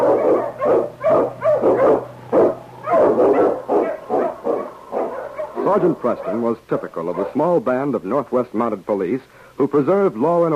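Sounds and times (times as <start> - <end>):
sled dog barking excitedly: 0.0 - 7.5
faint steady low hum: 0.0 - 10.5
speech: 5.8 - 10.5.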